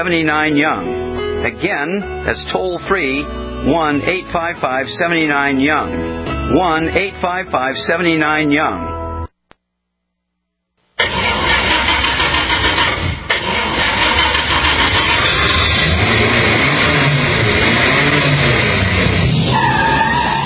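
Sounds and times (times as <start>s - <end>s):
speech: 0.0s - 8.9s
hot rod drag racing engine revving: 11.0s - 20.4s
tires screeching: 11.0s - 20.4s.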